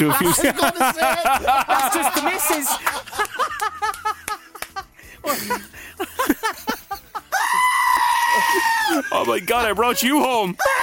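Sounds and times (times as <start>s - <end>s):
speech: 0.0s - 3.9s, 9.3s - 10.8s
laughter: 0.0s - 10.8s
goat bleating and screaming: 7.3s - 9.1s.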